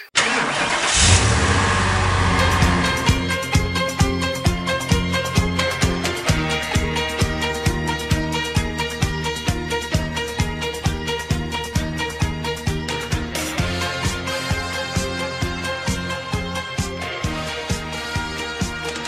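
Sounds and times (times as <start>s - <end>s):
car engine starting and revving loudly: 0.2s - 4.4s
rhythmic song with a steady beat: 2.2s - 19.0s.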